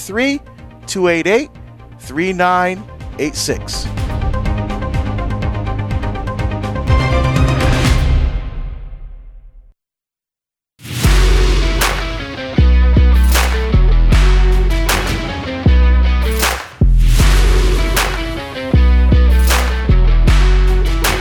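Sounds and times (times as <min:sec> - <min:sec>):
speech: 0:00.0 - 0:04.1
deep synth bass thumping in an electronic track: 0:02.9 - 0:08.3, 0:11.0 - 0:21.1.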